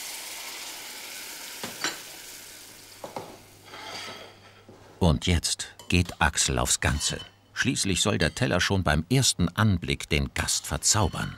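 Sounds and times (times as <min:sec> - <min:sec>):
turnips, spring onions and young fennel sizzling in a pan: 0:00.0 - 0:03.8
speech: 0:05.0 - 0:11.3.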